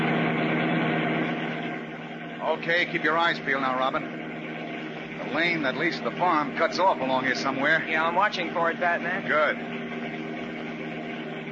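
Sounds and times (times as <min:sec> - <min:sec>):
powerful car engine speeding along a country highway: 0:00.0 - 0:11.5
speech: 0:02.5 - 0:04.2, 0:05.2 - 0:09.8.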